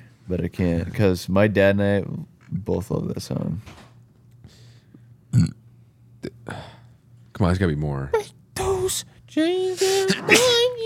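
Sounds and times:
speech: 0.3s - 3.8s, 5.3s - 5.6s, 7.4s - 10.8s
person talking animatedly, almost sung: 9.6s - 10.8s
person sneezing: 9.8s - 10.6s.

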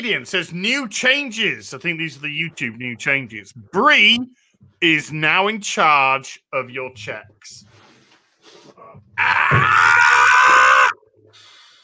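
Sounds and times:
speech: 0.0s - 7.7s, 8.8s - 10.2s
person screaming in surprise: 9.2s - 11.0s.

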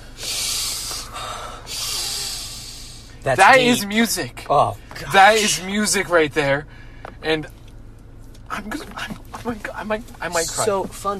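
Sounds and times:
deep sniffing breaths smelling spice: 0.0s - 3.2s
speech: 3.2s - 7.6s, 8.6s - 11.1s.

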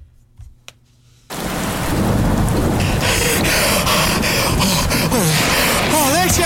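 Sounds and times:
heavy storm downpour pounding surfaces outdoors: 1.3s - 6.4s.

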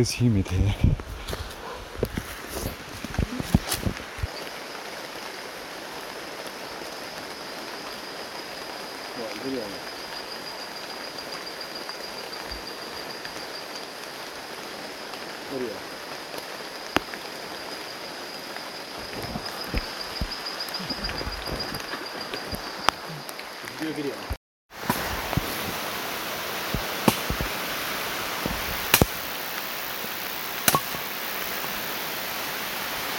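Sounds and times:
speech: 0.0s - 1.4s
rain pattering on surfaces in jungle at night: 0.0s - 33.1s
machete chopping firewood at night in the rain: 27.0s - 27.5s, 28.9s - 29.2s, 30.7s - 31.0s.

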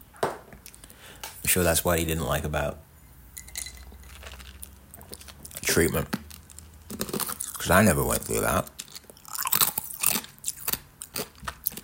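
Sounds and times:
speech: 1.5s - 2.9s, 5.8s - 6.2s, 7.6s - 8.8s
person chewing and crunching something crisp: 3.8s - 11.8s.

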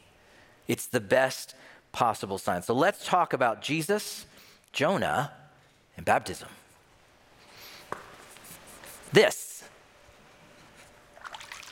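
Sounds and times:
speech: 0.7s - 5.4s, 6.0s - 6.6s, 9.1s - 9.4s
water trickling with soft bubbling and dribbling: 11.2s - 11.7s.

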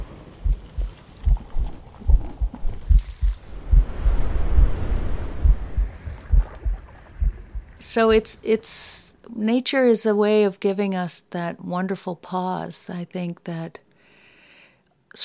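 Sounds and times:
rushing wind-like noise: 0.0s - 7.8s
steady heartbeat thumping in low pulses: 0.0s - 8.3s
speech: 7.9s - 13.8s.

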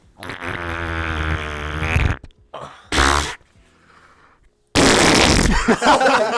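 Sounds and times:
person blowing a raspberry into a microphone: 0.0s - 2.3s, 2.9s - 3.4s, 4.8s - 5.7s
laughter: 5.6s - 6.3s.

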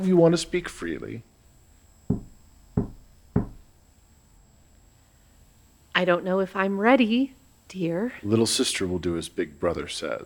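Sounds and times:
speech: 0.0s - 1.3s, 6.0s - 10.2s
solid knocks on wood: 2.1s - 3.7s.

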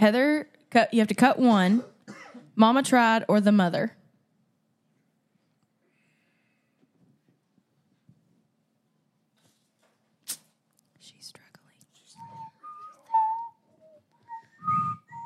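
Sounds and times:
speech: 0.0s - 1.9s, 2.6s - 4.0s
soft puffs into the microphone: 11.9s - 12.7s, 14.3s - 15.2s
person whistling a short wavering tune into the microphone: 12.2s - 15.2s.

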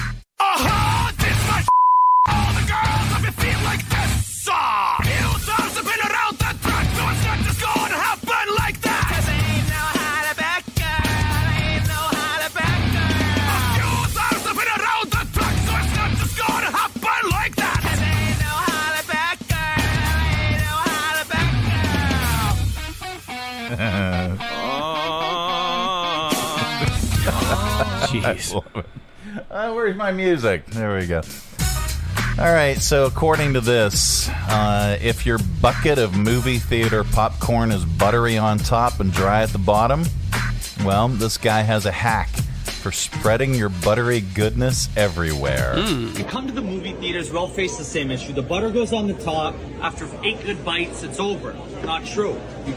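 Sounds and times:
loud metal-style cover of a pop song: 0.0s - 1.7s, 2.3s - 28.5s, 30.7s - 46.2s
short beep tone: 1.7s - 2.3s
laughter: 23.6s - 29.6s, 45.7s - 46.3s
speech: 28.2s - 31.4s, 32.4s - 40.2s, 40.8s - 52.7s.

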